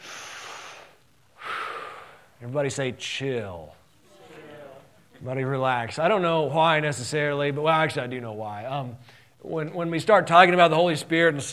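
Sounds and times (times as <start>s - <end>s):
church congregation taking a deep breath together: 0.0s - 2.3s, 9.0s - 9.4s
speech: 2.4s - 3.8s, 5.2s - 11.5s.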